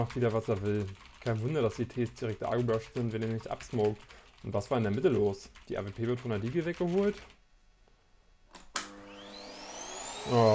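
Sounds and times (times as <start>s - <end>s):
speech: 0.0s - 7.4s, 10.3s - 10.5s
vacuum cleaner motor spinning up and humming: 8.8s - 10.5s.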